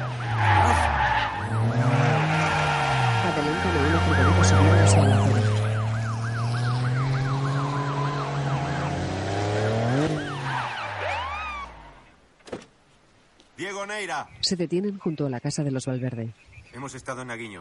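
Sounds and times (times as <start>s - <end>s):
car engine drone: 0.0s - 11.9s
car siren wailing: 0.0s - 12.0s
speech: 4.0s - 5.4s, 14.4s - 17.6s.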